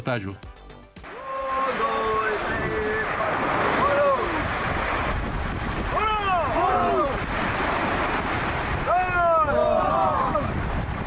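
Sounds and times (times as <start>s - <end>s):
speech: 0.1s - 0.5s
rushing surf on a beach: 1.0s - 11.0s
several loud voices calling and shouting during naval special operations training: 1.1s - 4.6s, 5.9s - 7.3s, 8.8s - 10.6s
gusting wind on a beach: 1.1s - 11.0s.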